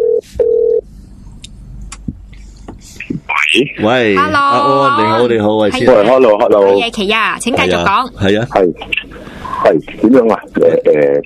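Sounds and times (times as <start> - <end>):
telephone ring tone on a call-in line: 0.0 - 0.8
speech: 3.6 - 11.2.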